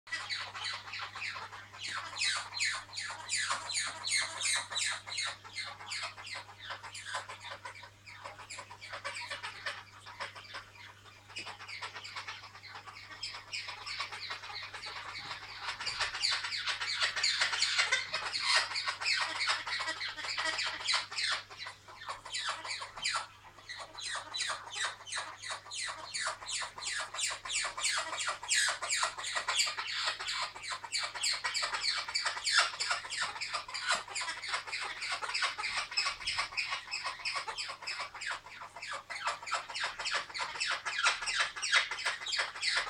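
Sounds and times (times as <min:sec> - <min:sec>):
blue-headed pionus parrots Pionus menstruus calling: 0:00.1 - 0:42.8.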